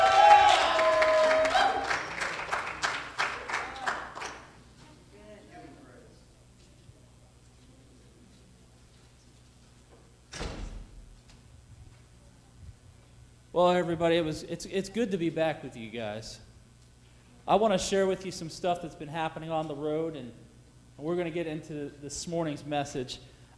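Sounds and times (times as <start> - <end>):
congregation applause: 0.0 - 4.6
speech: 13.6 - 16.5, 17.5 - 20.4, 21.0 - 23.5.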